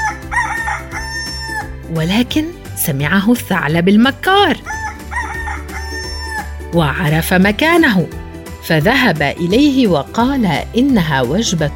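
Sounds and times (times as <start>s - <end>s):
rooster crowing cock-a-doodle-doo: 0.0s - 1.8s, 4.7s - 6.6s
speech: 1.9s - 4.8s, 6.7s - 11.7s.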